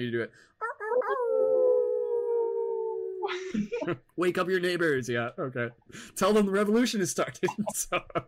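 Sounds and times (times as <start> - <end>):
speech: 0.0 - 1.3, 3.3 - 8.2
person imitating a wolf howl: 0.6 - 3.4
laughter: 7.4 - 8.2.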